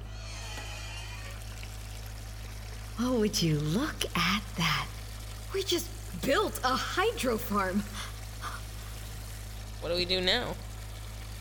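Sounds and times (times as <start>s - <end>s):
low constant hum of a pump in a hydroponic bin: 0.0s - 11.3s
water rushing from a hose into a hydroponic bin: 0.0s - 11.3s
speech: 3.0s - 8.1s, 9.8s - 10.6s.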